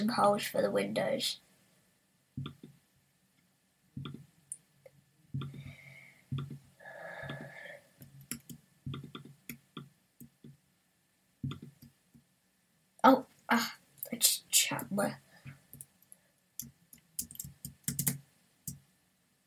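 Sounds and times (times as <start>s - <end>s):
speech: 0.0s - 1.4s, 13.0s - 15.2s
faint hum: 0.2s - 19.4s
keyboard keys clicking: 8.2s - 9.3s, 16.6s - 18.8s.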